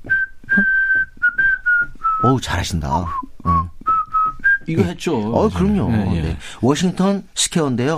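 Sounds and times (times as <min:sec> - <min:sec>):
person whistling a short song melody: 0:00.0 - 0:02.4, 0:03.0 - 0:04.8
speech: 0:02.2 - 0:03.6, 0:04.7 - 0:07.9.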